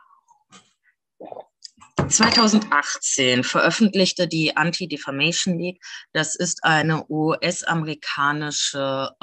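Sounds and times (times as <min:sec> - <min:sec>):
person sipping water: 0:00.3 - 0:01.8
gulping and swallowing noises: 0:01.2 - 0:01.8
soft mouth sounds: 0:01.2 - 0:01.8
speech: 0:02.1 - 0:09.2.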